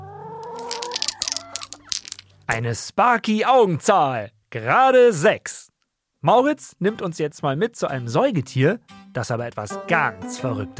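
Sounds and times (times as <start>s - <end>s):
chickens clucking and squawking: 0.0s - 1.8s
speech: 2.5s - 5.6s, 6.2s - 10.7s.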